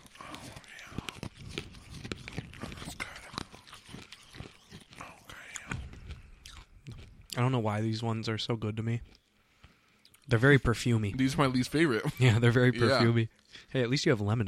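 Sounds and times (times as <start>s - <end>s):
wet mouth noises: 0.0s - 7.5s
chewing raspberry candies: 0.0s - 7.6s, 8.8s - 10.4s
speech: 7.4s - 9.2s, 10.3s - 14.4s.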